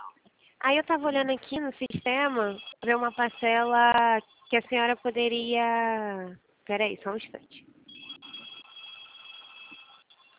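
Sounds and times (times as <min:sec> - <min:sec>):
speech: 0:00.6 - 0:07.7
telephone ringing with a high electronic trill: 0:01.9 - 0:04.8, 0:07.9 - 0:10.3.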